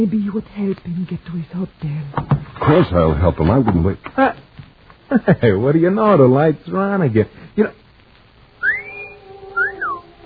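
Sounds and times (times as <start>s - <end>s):
speech: 0.0s - 4.5s, 5.1s - 7.8s
faint hiss: 0.0s - 10.2s
man's wolf whistle aimed at a woman: 8.6s - 10.1s.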